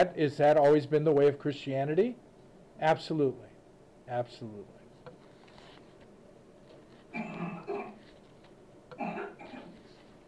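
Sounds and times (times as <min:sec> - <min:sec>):
speech: 0:00.0 - 0:02.2, 0:02.8 - 0:03.5, 0:04.1 - 0:04.8
sneezes: 0:07.1 - 0:08.0, 0:09.0 - 0:09.8.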